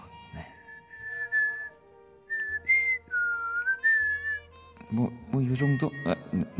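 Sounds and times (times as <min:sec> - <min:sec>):
person whistling a short melodic tune: 0:00.6 - 0:04.6
speech: 0:04.9 - 0:06.5.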